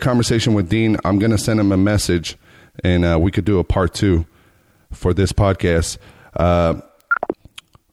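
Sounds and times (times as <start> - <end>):
speech: 0.0 - 4.3, 4.9 - 6.9
quick clicks and short blips of a phone call cutting off: 7.0 - 7.5
electronic phone call disconnect tone: 7.1 - 7.4.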